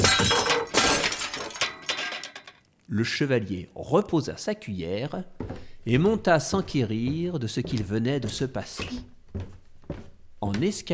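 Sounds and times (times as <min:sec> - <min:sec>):
glass shattering upstairs in a castle: 0:00.0 - 0:02.6
speech: 0:02.9 - 0:09.5, 0:10.4 - 0:10.9.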